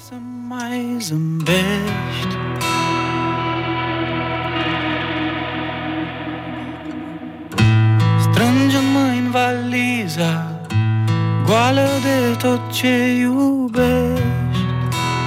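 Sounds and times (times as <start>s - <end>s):
speech: 0.1s - 2.4s
rock song intro on the radio: 1.5s - 10.6s
heavily effected guitar chords: 1.5s - 13.2s, 13.8s - 15.2s
steady bass drone: 2.2s - 9.4s.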